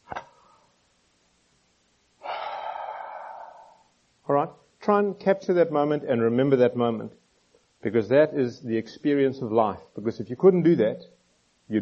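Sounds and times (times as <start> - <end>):
person taking a long soft breath: 0.3 - 0.8, 2.2 - 4.0
speech: 4.4 - 7.2, 7.8 - 11.8.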